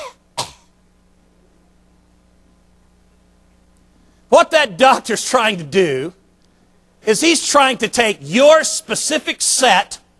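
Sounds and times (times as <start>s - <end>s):
person coughing: 0.0s - 0.8s
speech: 4.3s - 6.2s, 7.0s - 10.0s.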